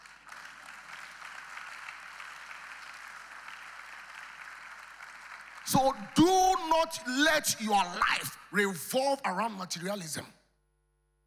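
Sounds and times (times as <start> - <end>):
large group applauding in a big room: 0.0 - 8.4
speech: 5.7 - 10.4.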